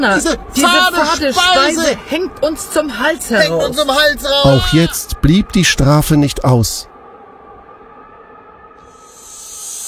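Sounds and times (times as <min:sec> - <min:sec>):
speech: 0:00.0 - 0:06.9
snakes hissing: 0:08.9 - 0:09.8.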